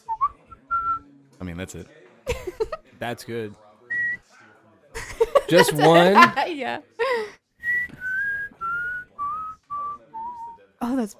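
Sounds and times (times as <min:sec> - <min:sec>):
speech: 0:01.4 - 0:03.6, 0:05.5 - 0:07.4, 0:10.9 - 0:11.1
laughter: 0:02.3 - 0:02.9, 0:05.0 - 0:07.3
person whistling slow sustained downward-gliding notes: 0:07.6 - 0:10.6.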